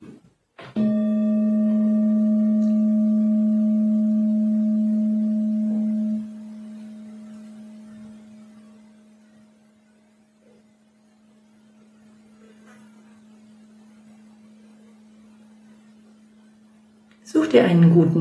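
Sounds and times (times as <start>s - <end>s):
singing bowl struck and ringing: 0.8s - 9.2s
speech: 17.5s - 18.1s.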